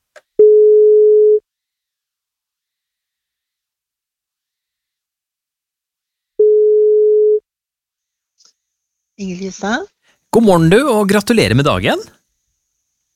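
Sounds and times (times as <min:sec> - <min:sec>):
phone ringback tone beeps of an outgoing wake-up call: 0:00.4 - 0:01.4, 0:06.4 - 0:07.4
speech: 0:09.2 - 0:12.2.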